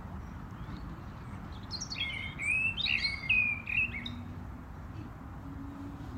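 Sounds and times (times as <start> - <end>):
European robin singing: 0.0 - 4.4.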